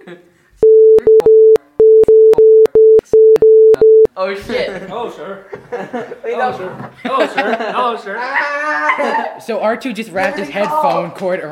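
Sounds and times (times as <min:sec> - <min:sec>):
laughter: 0:00.0 - 0:00.3, 0:04.7 - 0:09.4
speech: 0:00.1 - 0:00.4, 0:04.2 - 0:11.5
loud electronic phone tone beeping: 0:00.6 - 0:04.1.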